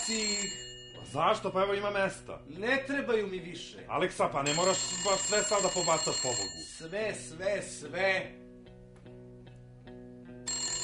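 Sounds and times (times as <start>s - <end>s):
telephone ringing: 0.0s - 1.5s, 4.4s - 7.2s, 10.5s - 10.8s
speech: 0.1s - 8.4s.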